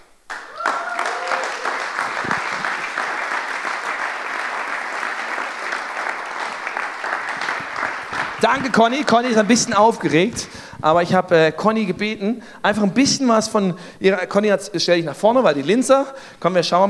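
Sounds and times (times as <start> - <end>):
large audience applause welcoming a speaker onto the stage: 0.3 - 10.6
speech: 8.4 - 16.8.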